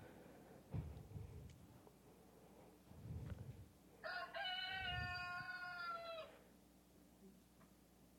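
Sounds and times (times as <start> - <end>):
steady hum: 0.0 - 8.1
dull low thumps: 0.7 - 1.6
rooster crowing: 4.0 - 6.4.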